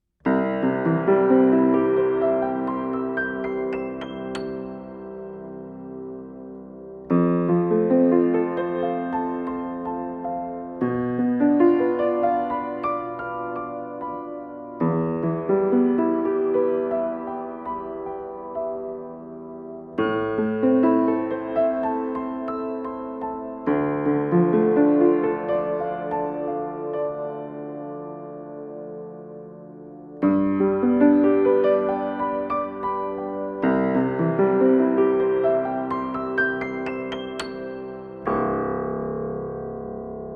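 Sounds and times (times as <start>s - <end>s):
piano with open lid playing: 0.2s - 40.3s.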